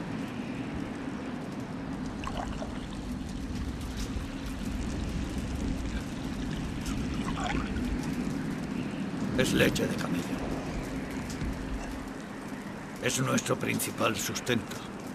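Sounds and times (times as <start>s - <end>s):
constant low rumble: 0.0s - 13.0s
water being poured for a thirsty animal: 2.1s - 3.9s, 6.0s - 7.8s
speech: 9.4s - 10.5s, 13.0s - 14.9s.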